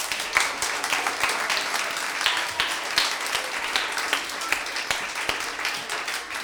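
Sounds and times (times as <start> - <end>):
audience applauding a violinist: 0.0 - 6.4.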